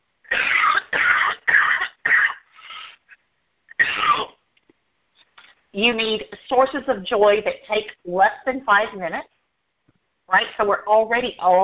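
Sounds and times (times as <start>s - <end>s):
person clearing throat: 0.3s - 3.0s, 3.7s - 4.4s
person coughing harshly: 0.3s - 3.0s, 3.7s - 4.4s
speech: 5.8s - 9.3s, 10.3s - 11.6s.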